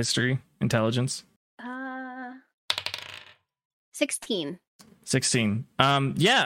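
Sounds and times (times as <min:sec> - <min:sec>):
speech: 0:00.0 - 0:01.3, 0:04.0 - 0:06.4
dice rolled for a history check clattering across a hard surface: 0:02.7 - 0:03.4.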